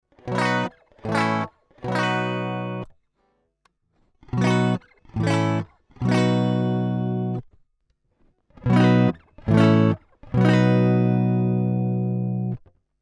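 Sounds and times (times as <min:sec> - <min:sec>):
electric guitar through a preamp DI: 0:00.1 - 0:02.9, 0:04.2 - 0:07.4, 0:08.6 - 0:12.7.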